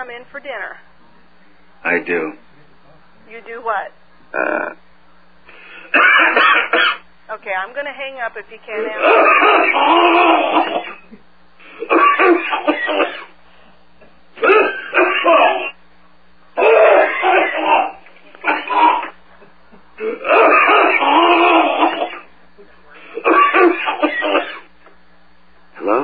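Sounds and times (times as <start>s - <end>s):
speech: 0.0s - 0.9s, 1.8s - 2.5s, 3.3s - 4.8s, 5.9s - 11.2s, 11.8s - 13.3s
faint steady hum: 0.0s - 26.0s
caller coughing heavily through a phone line: 5.5s - 7.1s, 8.8s - 13.4s, 14.0s - 15.8s, 16.6s - 22.4s, 23.0s - 24.9s.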